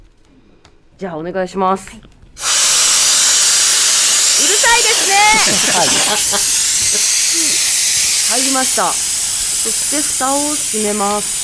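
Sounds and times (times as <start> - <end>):
speech: 1.0 - 2.1, 5.2 - 7.4, 8.3 - 11.4
construction machine running with a harsh hissing roar: 2.4 - 11.4
laughter: 4.4 - 7.7.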